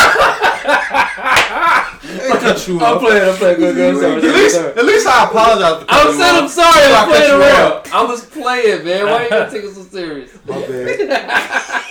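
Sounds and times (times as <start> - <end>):
people laughing: 0.0 - 5.1, 10.5 - 11.8
hands slapping as people playfully slap-box: 1.3 - 2.0
excited overlapping voices: 1.5 - 11.3
speech: 2.5 - 11.8.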